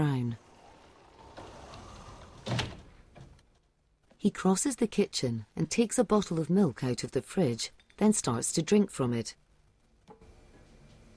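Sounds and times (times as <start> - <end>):
sliding door pushed shut in a kitchen: 0.0 - 3.5
speech: 4.2 - 9.4.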